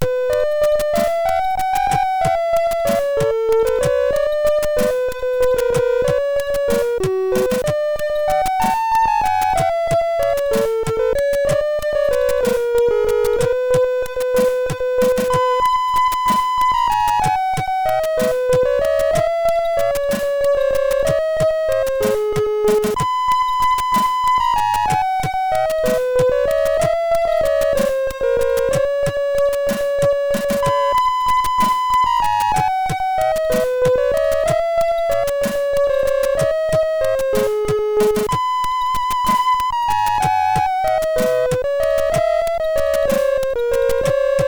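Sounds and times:
chiptune cover on MOS6581R3 SID chip: 0.0s - 44.4s.

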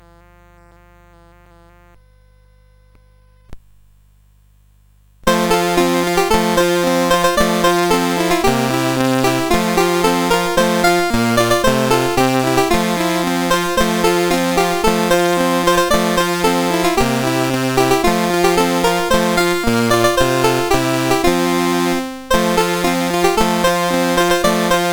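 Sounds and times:
banjo: 5.3s - 24.9s.

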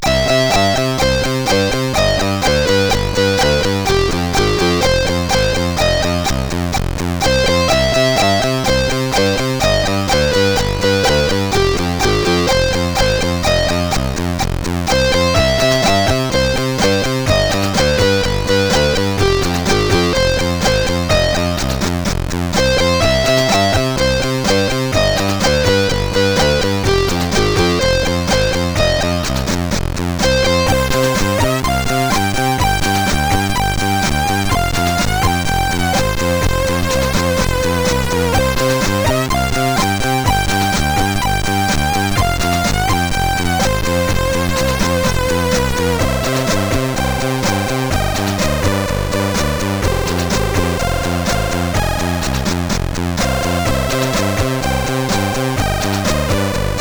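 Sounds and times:
tracker music on CSG8580R5 chip: 0.0s - 29.5s, 30.1s - 56.7s.

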